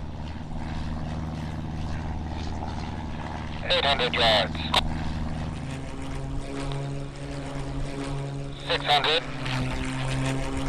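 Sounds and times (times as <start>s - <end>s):
propeller plane circling overhead: 0.0s - 10.6s
speech: 3.7s - 4.9s, 8.7s - 9.3s.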